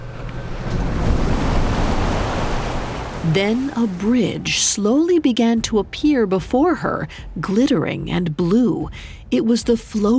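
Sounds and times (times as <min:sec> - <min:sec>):
waves washing small rocks onto shore: 0:00.0 - 0:04.9
speech: 0:03.2 - 0:10.1.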